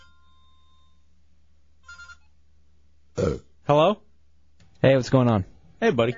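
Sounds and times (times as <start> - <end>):
phone ringtone ringing for an incoming call: 0.0 - 1.0
low hum: 0.0 - 6.1
speech: 3.2 - 4.0, 4.8 - 6.1.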